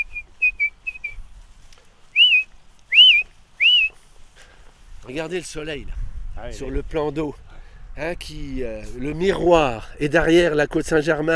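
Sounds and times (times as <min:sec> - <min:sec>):
song thrush singing near a pond in France: 0:00.0 - 0:01.4, 0:02.1 - 0:04.0
speech: 0:05.1 - 0:07.4, 0:08.0 - 0:11.3.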